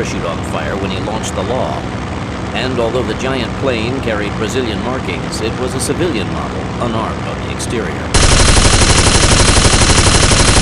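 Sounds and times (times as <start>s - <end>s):
speech: 0.0s - 8.8s
machine gun firing tracer rounds: 8.2s - 10.6s.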